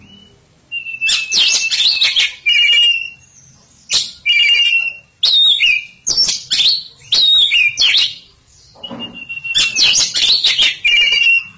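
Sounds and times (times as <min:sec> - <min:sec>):
Oriental magpie-robin champion singing bird song: 0:00.0 - 0:11.5.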